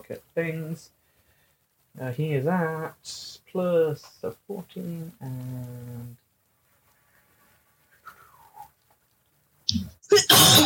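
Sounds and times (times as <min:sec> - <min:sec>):
speech: 0:00.1 - 0:01.0, 0:02.0 - 0:06.2
person sneezing: 0:10.1 - 0:10.6.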